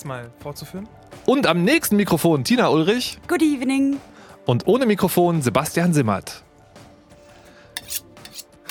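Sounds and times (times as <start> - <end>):
speech: 0.0 - 6.5
cutlery metal blades scraping against each other being sharpened: 7.2 - 8.6.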